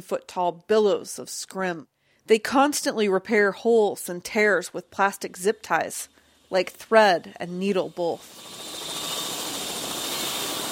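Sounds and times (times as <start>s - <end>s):
speech: 0.0s - 8.5s
private farm helicopter rotor and engine drone in flight: 8.2s - 10.7s.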